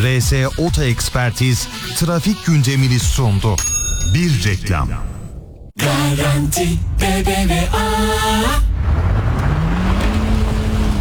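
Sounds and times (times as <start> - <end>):
speech: 0.1 - 5.1, 5.8 - 8.7
old car engine straining to climb a hill: 7.8 - 10.9.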